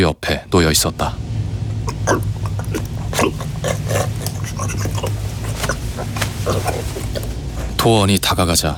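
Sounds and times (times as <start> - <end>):
speech: 0.0 - 1.3, 2.0 - 3.3, 7.8 - 8.7
pig sniffing and snorting: 0.0 - 8.5.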